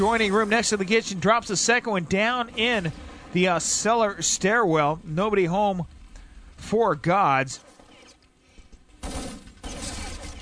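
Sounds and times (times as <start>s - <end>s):
speech: 0.0s - 6.0s, 6.6s - 7.7s
gunfire being exchanged at range: 9.0s - 10.4s.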